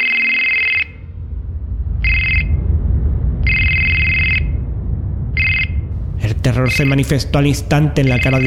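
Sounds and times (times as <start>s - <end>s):
telephone ringing in a bright electronic tone: 0.0s - 1.0s, 2.0s - 2.5s, 3.5s - 4.5s, 5.4s - 5.7s, 8.0s - 8.4s
steady low rumble: 0.0s - 8.4s
speech: 6.5s - 8.4s.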